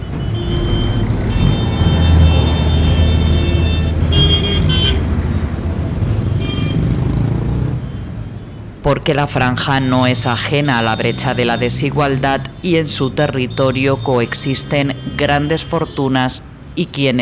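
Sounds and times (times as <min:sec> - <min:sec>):
car horns honking in short bursts: 0:00.0 - 0:05.5, 0:06.1 - 0:07.2, 0:09.7 - 0:16.3
dense rush-hour street traffic rumbling on main streets of Gaza: 0:00.0 - 0:17.2
speech: 0:08.9 - 0:17.2.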